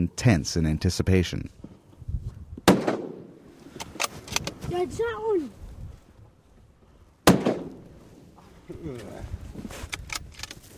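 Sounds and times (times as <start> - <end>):
speech: 0.0 - 1.6, 4.8 - 5.6, 8.8 - 9.9
rifle shot fired from a slowed boat while hunting at dusk: 2.6 - 3.4, 7.2 - 7.9.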